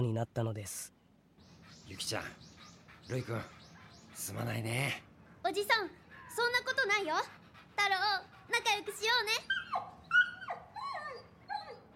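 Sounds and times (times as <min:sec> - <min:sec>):
speech: 0:00.0 - 0:01.0, 0:01.8 - 0:02.5, 0:03.1 - 0:03.6, 0:04.2 - 0:09.8
white mixed-breed puppy whimpering: 0:09.4 - 0:11.9.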